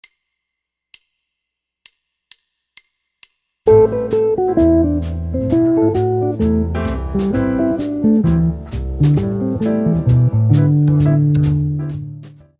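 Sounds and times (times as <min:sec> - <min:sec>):
guitar quartal chords: 0:03.7 - 0:12.1.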